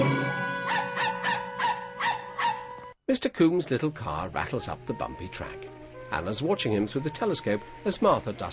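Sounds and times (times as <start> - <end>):
dog yipping: 0.1 - 2.8
speech: 3.1 - 8.5.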